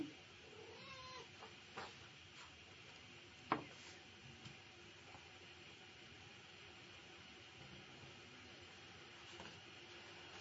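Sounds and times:
hiss: 0.0 - 10.3
cat meowing: 0.5 - 1.3.

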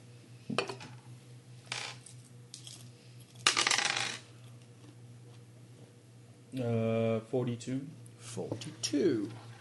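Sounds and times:
percentile dice rolling on a hard surface during a tabletop game: 1.7 - 2.1, 3.4 - 4.3
people talking: 6.6 - 9.4.

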